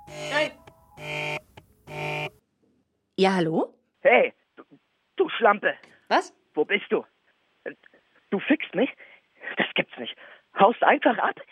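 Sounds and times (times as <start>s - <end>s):
electronic phone ringing with buzzy harmonic tone: 0.0s - 2.4s
speech: 3.2s - 4.8s, 5.4s - 11.5s.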